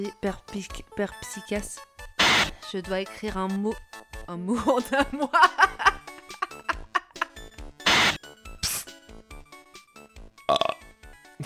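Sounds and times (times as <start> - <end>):
speech: 0.0 - 5.8
laughter: 4.6 - 7.4
short croaky burp: 10.4 - 10.9.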